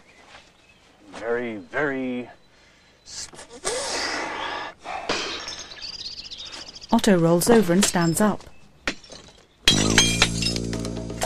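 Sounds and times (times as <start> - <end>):
faint rustle: 0.0 - 1.6
speech: 1.2 - 2.4, 7.0 - 8.5
glass pane in a door being smashed: 5.1 - 6.2, 8.9 - 11.2
glass shards scattering and settling: 5.4 - 6.4, 9.0 - 10.7.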